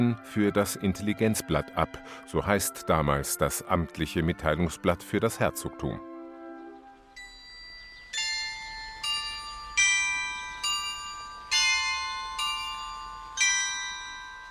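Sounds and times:
speech: 0.0s - 6.1s
town hall carillon chiming a slow melody: 7.2s - 14.4s.

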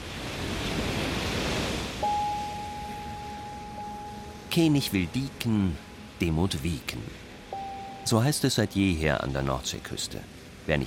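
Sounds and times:
ocean waves breaking in surf: 0.0s - 10.8s
thin steady tone: 2.0s - 10.4s
speech: 4.5s - 7.2s, 8.0s - 10.8s.

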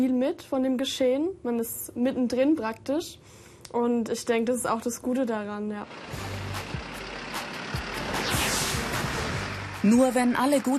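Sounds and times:
speech: 0.0s - 6.7s, 9.8s - 10.7s
heavy trucks loaded with machines and car parts starting and driving off: 5.4s - 10.7s.

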